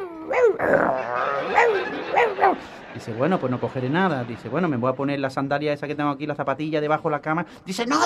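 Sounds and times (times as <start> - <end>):
person growling and barking in imitation of a rabid dog inside a wardrobe: 0.0 - 2.6
speech: 0.3 - 8.0
laughter: 1.0 - 5.1.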